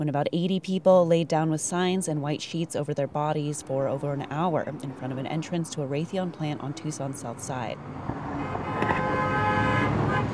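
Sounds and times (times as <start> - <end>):
speech: 0.0 - 8.2
rumble of idling traffic outdoors: 0.0 - 10.3
car horns blaring at a blocked entrance: 8.2 - 10.3.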